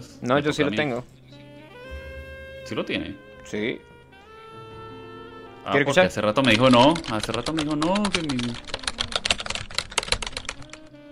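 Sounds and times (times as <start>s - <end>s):
speech: 0.0s - 1.2s, 2.7s - 3.9s, 5.6s - 8.8s
rapid typing on a mechanical keyboard: 6.4s - 10.9s.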